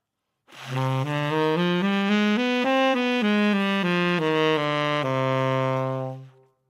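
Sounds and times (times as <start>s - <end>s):
C harmonic minor scale played: 0.7s - 6.4s.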